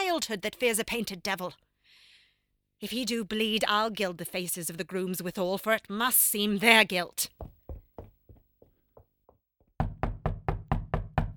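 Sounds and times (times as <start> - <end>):
speech: 0.2 - 1.7, 2.8 - 7.6
knocking on a door: 7.4 - 8.4, 9.8 - 11.3.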